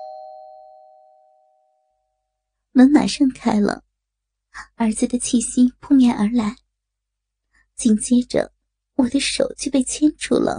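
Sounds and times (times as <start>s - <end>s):
doorbell chime at the front door of a family home: 0.0s - 2.2s
speech: 2.8s - 3.9s, 4.6s - 6.6s, 7.8s - 10.5s.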